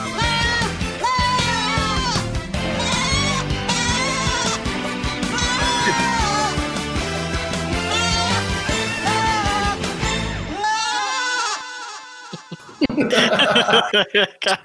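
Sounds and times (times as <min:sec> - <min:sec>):
goat bleating: 0:00.0 - 0:06.6, 0:07.8 - 0:09.8, 0:10.5 - 0:12.8
dense loud musical backing: 0:00.0 - 0:10.5
laughter: 0:05.4 - 0:06.6, 0:11.0 - 0:14.6
speech: 0:13.7 - 0:14.6.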